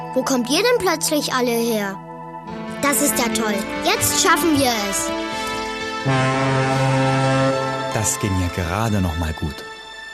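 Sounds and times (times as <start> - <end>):
speech: 0.2 - 2.0, 2.8 - 5.4, 6.0 - 6.3, 8.0 - 9.7
ship's horn blowing: 4.9 - 8.6.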